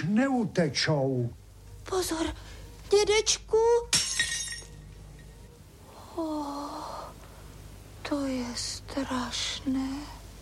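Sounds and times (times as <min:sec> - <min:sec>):
speech: 0:00.1 - 0:04.0, 0:06.2 - 0:07.0, 0:08.1 - 0:10.2
porcelain figurine shattering into pieces: 0:03.9 - 0:04.8.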